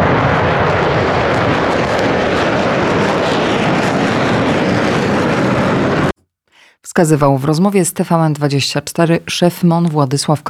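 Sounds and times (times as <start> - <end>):
F-35 fifth-generation fighter jet engine roaring: 0.0 - 6.1
speech: 7.0 - 10.4.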